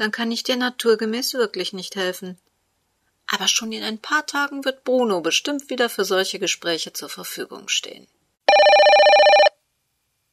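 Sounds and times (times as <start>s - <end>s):
speech: 0.0s - 2.5s, 3.3s - 8.2s
telephone bell ringing: 8.5s - 9.6s.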